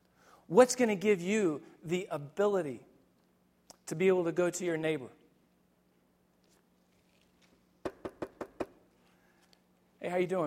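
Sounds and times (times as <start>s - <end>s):
speech: 0.5s - 2.9s, 3.9s - 5.2s, 10.1s - 10.4s
sharp knocking on a door: 7.8s - 8.8s.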